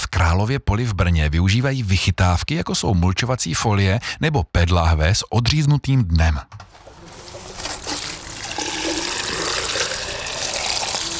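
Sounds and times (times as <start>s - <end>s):
speech: 0.3s - 6.8s
tap water gushing for garden watering: 7.2s - 11.1s.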